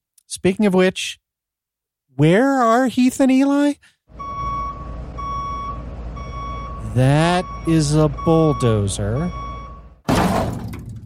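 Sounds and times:
speech: 0.4 - 1.2, 2.2 - 3.9, 7.0 - 9.4
clattering debris from a smashed office chair: 10.1 - 11.0
office chair being smashed and breaking: 10.1 - 11.0.

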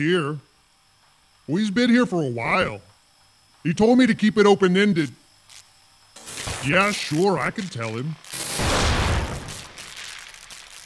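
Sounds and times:
speech: 0.0 - 0.5, 1.5 - 2.9, 3.6 - 5.6, 6.6 - 8.2
explosion boom: 8.5 - 9.9.

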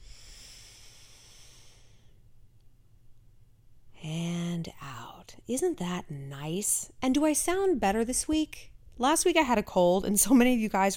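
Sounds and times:
deep breath drawn in and held: 0.0 - 2.2
speech: 5.5 - 10.9.

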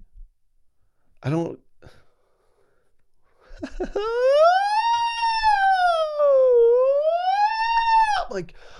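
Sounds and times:
speech: 1.2 - 2.0, 3.6 - 4.7, 8.3 - 8.7
laughter: 3.5 - 4.4
voice imitating a wailing ambulance siren: 3.9 - 8.3.

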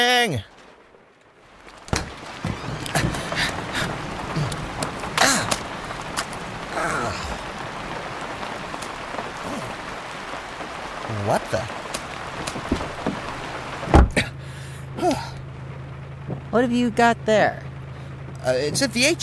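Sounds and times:
speech: 0.0 - 0.5, 11.3 - 11.8, 16.5 - 17.7, 18.4 - 19.2
steady rain falling: 0.0 - 19.2
dull thuds of drops striking surfaces: 12.4 - 13.2, 13.9 - 14.3.

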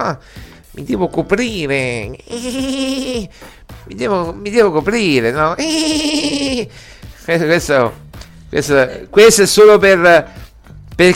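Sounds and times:
speech: 0.0 - 10.4, 11.0 - 11.1
man imitating a sheep bleating: 1.6 - 3.4, 5.0 - 6.7.

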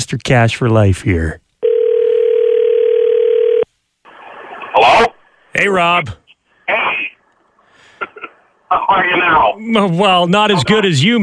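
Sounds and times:
speech: 0.1 - 1.4, 4.9 - 6.2, 8.7 - 11.2
telephone dial tone while placing a call: 1.6 - 3.7.

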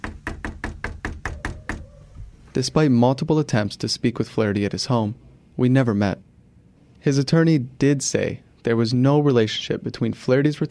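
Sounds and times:
firm knocks on a house door: 0.0 - 1.9
speech: 2.6 - 6.3, 7.0 - 10.7.

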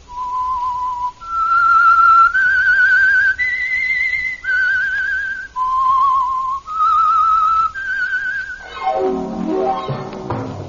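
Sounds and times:
whistled theme tune of a radio mystery drama: 0.1 - 10.3
orchestral music: 8.6 - 10.6.

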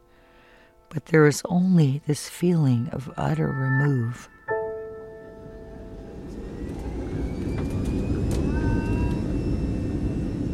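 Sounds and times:
speech: 0.9 - 4.4
airplane engines roaring during takeoff and climb: 5.3 - 10.5.

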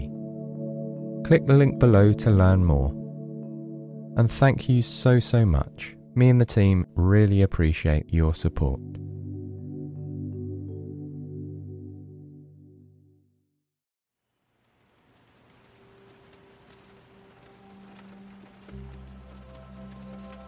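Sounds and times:
soft melodic tune: 0.0 - 13.4, 17.2 - 20.4
speech: 1.2 - 3.0, 4.2 - 9.0
light rain tapping on a window: 14.3 - 20.4
scattered drips: 14.5 - 20.4.

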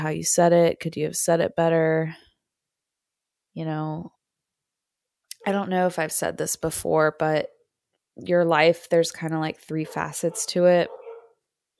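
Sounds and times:
speech: 0.0 - 2.2, 3.6 - 4.2, 5.4 - 7.6, 8.2 - 11.0
dog barking: 9.8 - 11.4.

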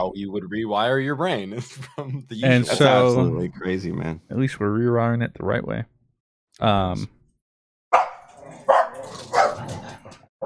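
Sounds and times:
speech: 0.0 - 5.9, 6.6 - 7.2
laughter: 1.5 - 3.2
dog barking: 7.9 - 9.8.

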